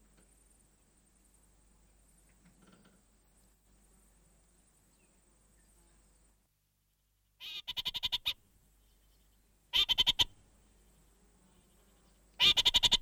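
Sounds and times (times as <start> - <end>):
background hiss: 0.0 - 12.9
orange-fronted parakeet giving fast grating chatter: 7.4 - 8.4, 9.8 - 10.3, 12.4 - 12.9.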